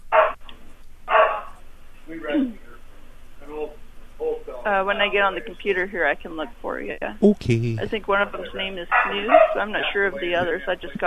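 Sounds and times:
medium Aussie-mix dogs barking and yipping: 0:00.0 - 0:00.4, 0:01.1 - 0:01.6, 0:08.9 - 0:09.6
speech: 0:04.7 - 0:11.0.

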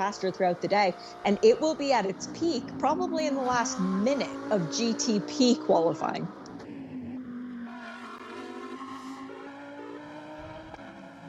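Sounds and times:
speech: 0:00.0 - 0:06.4
race car high engine drone on a racing circuit during qualifying: 0:00.0 - 0:11.2.

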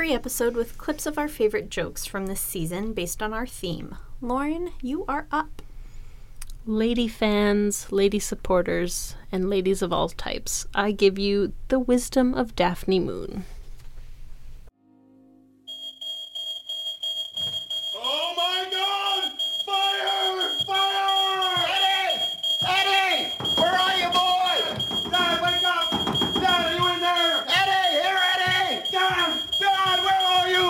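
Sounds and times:
speech: 0:00.0 - 0:05.7, 0:06.6 - 0:13.6
smoke alarm over a bed sounding a high-pitched false alarm tone: 0:15.7 - 0:30.6
several people shouting and talking in agitated voices: 0:18.0 - 0:30.6.

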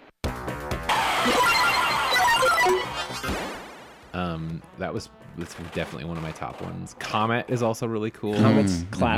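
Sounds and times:
pinball machine electronic beeps and chimes: 0:00.9 - 0:03.4
speech: 0:04.4 - 0:09.1.

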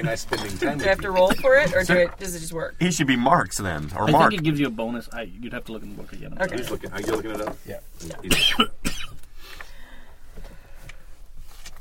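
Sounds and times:
choking cough after inhaling soda: 0:00.0 - 0:01.7, 0:08.2 - 0:09.2
speech: 0:00.0 - 0:09.0
wheezy breaths: 0:09.3 - 0:11.3.

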